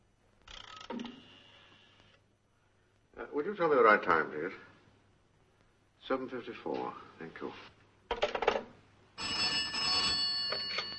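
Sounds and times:
speech: 3.2 - 4.7, 6.1 - 7.8
telephone bell ringing: 9.2 - 10.9.

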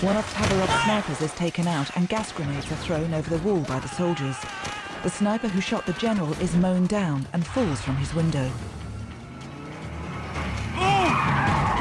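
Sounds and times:
speech: 0.0 - 8.8
car tires skidding: 9.5 - 11.7.

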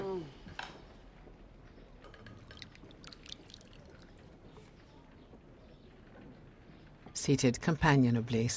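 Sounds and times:
soup being poured into bowls: 2.1 - 4.6
speech: 7.2 - 8.5.

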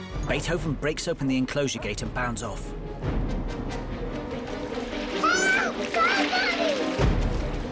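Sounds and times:
speech: 0.3 - 3.8
water splashing in a swimming pool: 4.3 - 7.7.

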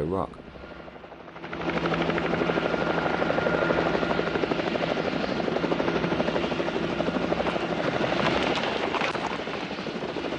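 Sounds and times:
helicopter engine roar: 0.0 - 10.3
speech: 0.1 - 0.4
helicopter rotor thudding overhead: 1.3 - 10.3.

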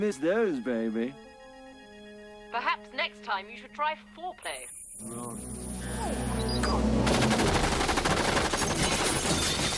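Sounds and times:
speech: 0.0 - 1.3, 2.5 - 6.3
machine gun fire barrage: 7.0 - 9.7.

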